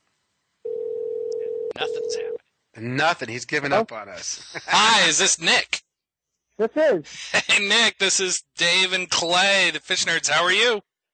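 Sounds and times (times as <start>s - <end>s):
outgoing phone call ringing tone: 0.6s - 2.4s
speech: 1.8s - 5.8s, 6.6s - 10.9s.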